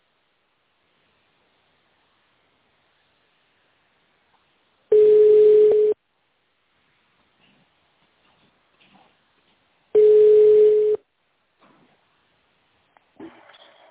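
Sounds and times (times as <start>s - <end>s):
telephone ringback tone while waiting for an operator: 4.9s - 6.0s, 10.0s - 11.0s.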